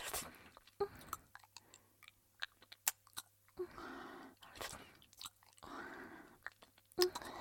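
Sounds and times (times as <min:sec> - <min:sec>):
child chewing and crunching food while being fed: 0:00.0 - 0:03.4, 0:04.4 - 0:05.8, 0:06.4 - 0:07.3.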